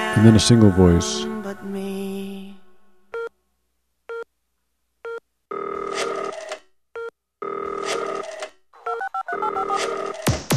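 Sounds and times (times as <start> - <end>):
speech: 0.1 - 1.6
telephone ringing with a harsh electronic tone: 5.5 - 10.3.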